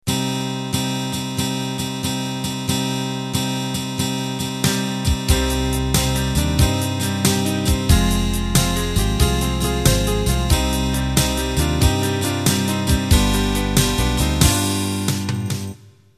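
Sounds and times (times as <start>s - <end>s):
unplugged slow rock intro: 0.1s - 15.8s.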